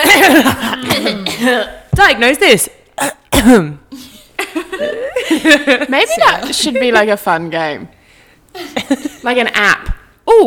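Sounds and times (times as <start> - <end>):
person giving short rough coughs: 0.0 - 1.7, 3.0 - 4.1
speech: 1.4 - 4.0, 4.7 - 8.0, 8.6 - 10.4.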